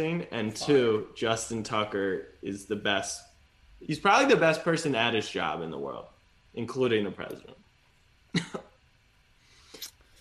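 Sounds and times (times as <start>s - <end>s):
speech: 0.0s - 7.6s, 8.3s - 8.7s
person coughing: 8.3s - 8.7s.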